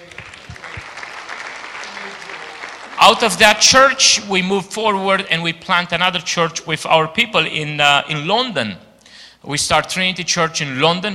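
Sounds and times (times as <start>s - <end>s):
audience applause: 0.0s - 3.5s
speech: 3.1s - 11.1s.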